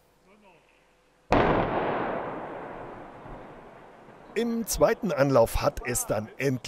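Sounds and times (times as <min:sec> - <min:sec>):
explosive blast demolishing a motorway bridge section in the Sauerland: 0:01.3 - 0:04.0
speech: 0:04.4 - 0:06.6.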